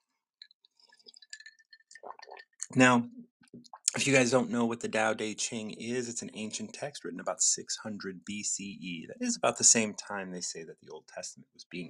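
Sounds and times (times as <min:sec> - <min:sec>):
person slurping kombucha from a glass: 0:00.9 - 0:02.7
speech: 0:02.7 - 0:03.2, 0:04.0 - 0:11.8.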